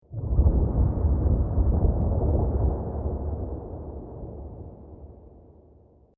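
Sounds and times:
distant thunder: 0.1s - 5.5s.

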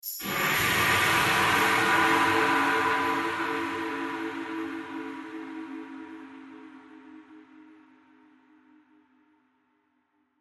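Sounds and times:
ghostly descending metallic swirling horror hit: 0.2s - 8.2s.

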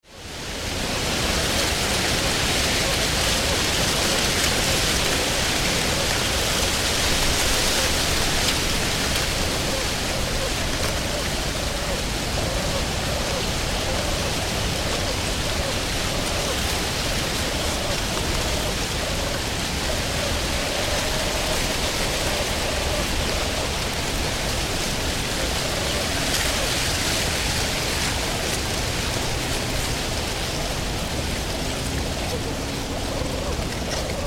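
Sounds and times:
dry corn blown and shaken by wind in a corn field: 0.0s - 34.2s.

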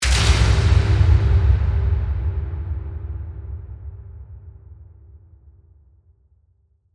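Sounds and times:
heavy metal hit with reverb: 0.0s - 5.0s.

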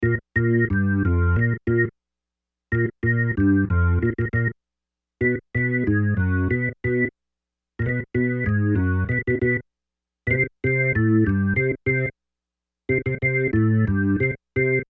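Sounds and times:
organ melody ascending on keyboards: 0.0s - 1.9s, 2.7s - 4.5s, 5.2s - 7.1s, 7.8s - 9.6s, 10.3s - 12.1s, 12.9s - 14.8s.

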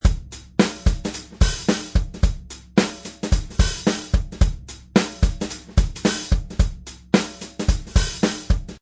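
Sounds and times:
funk drum beat loop: 0.0s - 8.8s.

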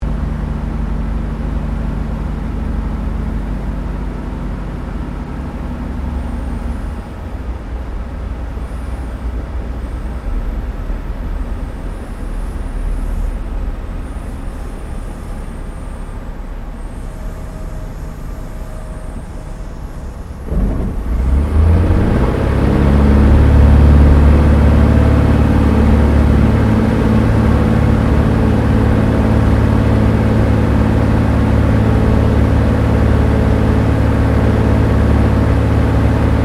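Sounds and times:
Cessna O-1 Birddog spotter aircraft touch and go from the interior: 0.1s - 36.4s.

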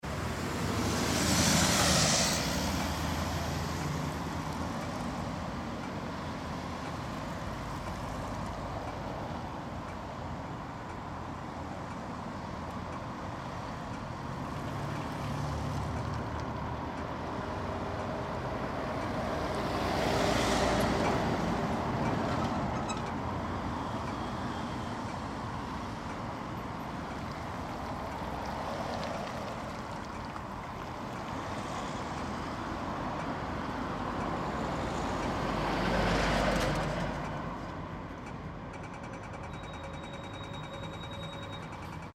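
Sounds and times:
moderately heavy city traffic: 0.0s - 42.1s
pedestrian crossing signal for the visually impaired: 22.1s - 25.4s, 38.8s - 42.1s.

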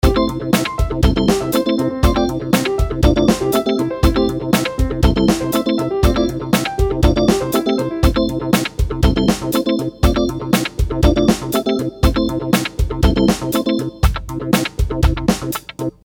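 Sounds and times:
organ: 0.0s - 14.0s
piano arpeggio: 0.0s - 14.0s
drums beat: 0.0s - 16.0s.

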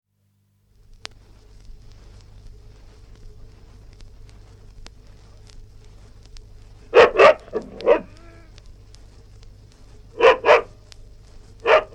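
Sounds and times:
low hum: 0.2s - 11.9s
West Highland white terrier barking sharply indoors: 6.9s - 8.5s, 10.1s - 10.8s, 11.6s - 11.9s.

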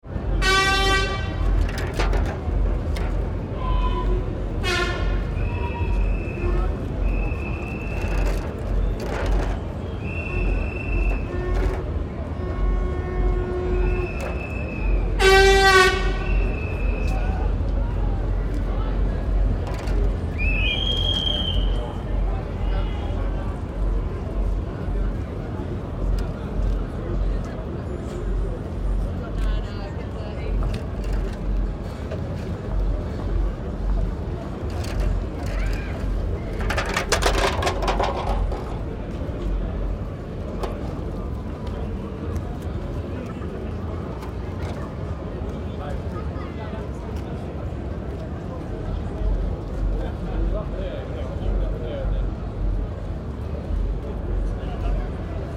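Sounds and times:
crowd at a carnival street party: 0.0s - 55.5s
carnival hooters and whistles blowing at a street party: 5.4s - 8.1s, 9.9s - 11.3s, 13.8s - 15.1s, 16.3s - 17.2s, 20.4s - 21.9s.

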